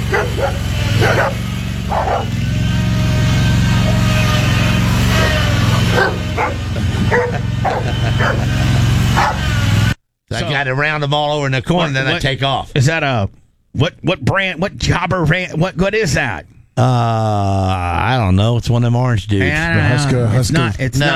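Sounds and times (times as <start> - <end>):
dog barking in short sharp bursts: 0.0 - 2.4, 5.2 - 8.5, 9.1 - 9.5
steady low rumble of engine or road noise: 0.0 - 10.0
laughter: 5.6 - 8.9, 19.6 - 21.1
speech: 10.6 - 21.1.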